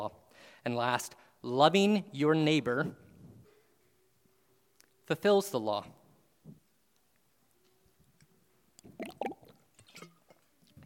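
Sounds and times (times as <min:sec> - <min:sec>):
speech: 0:00.0 - 0:03.0, 0:05.1 - 0:06.6
liquid gurgling and sloshing in a water bottle as someone drinks: 0:08.9 - 0:10.0.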